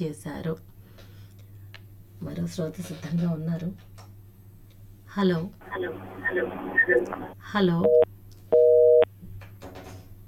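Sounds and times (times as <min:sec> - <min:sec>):
speech: 0:00.0 - 0:00.8, 0:02.2 - 0:04.0, 0:05.2 - 0:08.0
faint low hum: 0:00.0 - 0:09.5
phone busy tone after a call drops: 0:05.6 - 0:09.1.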